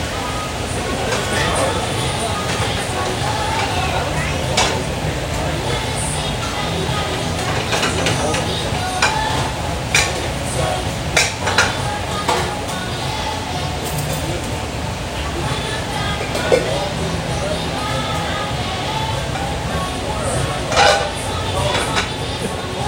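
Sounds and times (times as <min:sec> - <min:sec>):
low room rumble: 0:00.0 - 0:22.8
overlapping voices of cooks in a restaurant: 0:00.0 - 0:22.8
dishes and utensils clinking in a restaurant kitchen: 0:00.8 - 0:13.0, 0:13.8 - 0:14.5, 0:16.0 - 0:17.5, 0:19.2 - 0:22.8.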